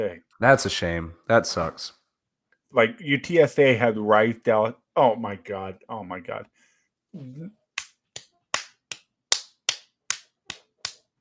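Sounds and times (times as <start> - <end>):
speech: 0.0 - 2.0, 2.7 - 7.6
hand slapping own forehead: 7.7 - 11.2.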